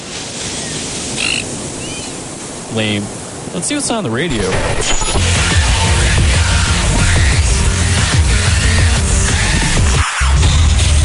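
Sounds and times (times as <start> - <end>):
ocean surf washing onto a beach: 0.0 - 10.1
high chirping call: 0.6 - 2.2
speech: 2.7 - 5.3.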